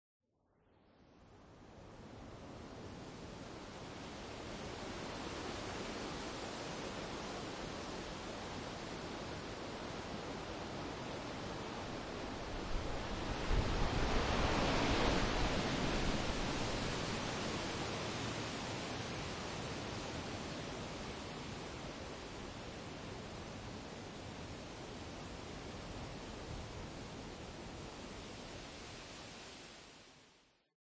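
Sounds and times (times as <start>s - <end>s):
wind in pine trees: 0.6s - 30.6s.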